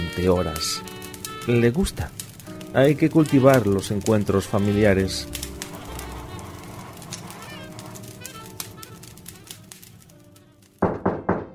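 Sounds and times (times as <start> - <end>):
speech: 0.2 - 0.9, 1.5 - 5.4
knocking on a house door: 10.8 - 11.5.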